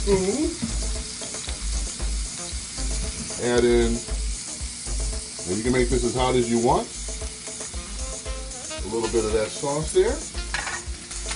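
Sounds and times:
speech: 0.0s - 1.0s, 3.4s - 4.2s, 5.5s - 7.0s, 8.9s - 10.4s
garlic sizzling in hot oil in a pan: 0.0s - 11.3s.

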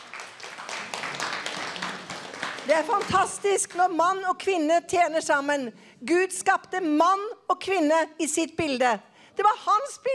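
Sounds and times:
crowd applauding: 0.0s - 3.5s
speech: 2.7s - 10.1s.

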